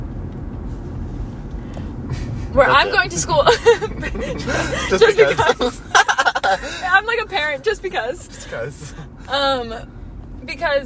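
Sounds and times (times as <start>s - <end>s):
road noise inside a moving car: 0.0s - 10.8s
speech: 2.1s - 10.8s
laughter: 2.7s - 7.2s.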